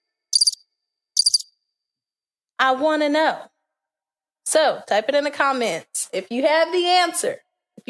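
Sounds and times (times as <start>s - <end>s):
cricket chirping sound effect: 0.3s - 0.6s, 1.2s - 1.5s
speech: 2.6s - 3.5s, 4.5s - 7.8s.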